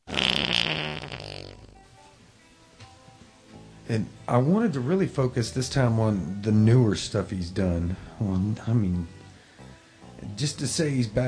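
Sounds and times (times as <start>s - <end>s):
long loud buzzy sputtering fart: 0.0s - 2.1s
speech: 3.9s - 9.2s, 10.4s - 11.2s.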